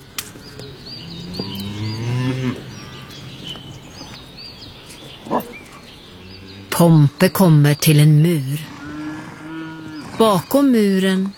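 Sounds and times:
birds chirping softly: 0:00.0 - 0:11.3
other cattle: 0:00.0 - 0:11.3
cow letting out a long deep moo: 0:00.6 - 0:04.3, 0:05.1 - 0:07.3, 0:08.4 - 0:10.6
speech: 0:06.8 - 0:08.7, 0:10.2 - 0:11.3.

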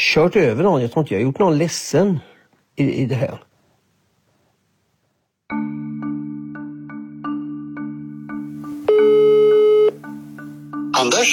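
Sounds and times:
speech: 0:00.1 - 0:03.5, 0:05.5 - 0:05.8, 0:11.0 - 0:11.3
steady electronic telephone ringing tone with short repeated pulses: 0:08.9 - 0:10.0.

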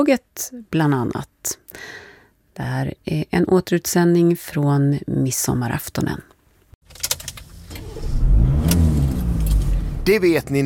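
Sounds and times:
speech: 0:00.0 - 0:02.0, 0:02.6 - 0:06.3, 0:10.1 - 0:10.6
sharp clicks and rattles: 0:06.8 - 0:08.0
car engine starting, rumbling and revving on a drive through Sweden: 0:06.9 - 0:10.6.

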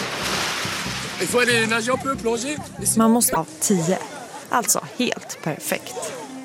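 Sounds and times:
rushing watery splash of a person landing in water: 0:00.0 - 0:02.1
speech: 0:01.2 - 0:06.2.

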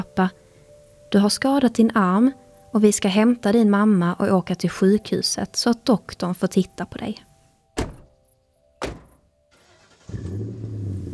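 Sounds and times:
speech: 0:00.0 - 0:00.4, 0:01.1 - 0:07.3
sharp thumps: 0:07.8 - 0:08.2, 0:08.8 - 0:09.3
car engine starting and humming: 0:09.0 - 0:11.1.

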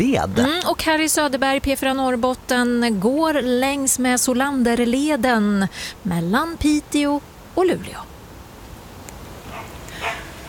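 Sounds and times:
speech: 0:00.0 - 0:08.1
soft outdoor hiss: 0:00.0 - 0:10.4
dog barking: 0:09.5 - 0:10.4.

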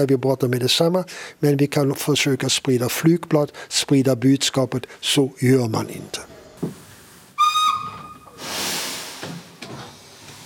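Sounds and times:
speech: 0:00.0 - 0:06.8
steam train whistle on a train to Munich: 0:07.4 - 0:08.4
broad rushing hiss of steam: 0:08.3 - 0:10.4.

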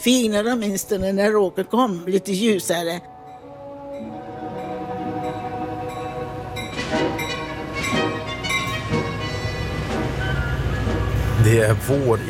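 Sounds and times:
speech: 0:00.0 - 0:03.1, 0:11.5 - 0:12.2
train arriving at a station rumbling, heard from inside a compartment: 0:02.8 - 0:12.2
high metallic squeals of an arriving train: 0:03.1 - 0:11.4
rhythmic clatter from train wheels: 0:04.0 - 0:11.2.

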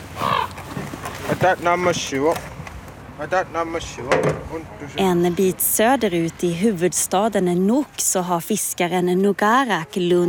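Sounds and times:
ravens on rooftops in Greenland croaking: 0:00.0 - 0:01.4
steady outdoor rumble: 0:00.0 - 0:10.2
speech: 0:01.4 - 0:02.5, 0:03.2 - 0:10.2.

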